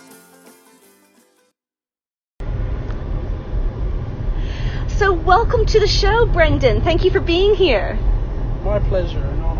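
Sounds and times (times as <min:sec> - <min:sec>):
music: 0:00.0 - 0:01.6
car engine running while driving: 0:02.4 - 0:09.5
road noise: 0:02.4 - 0:09.5
speech: 0:05.0 - 0:09.5.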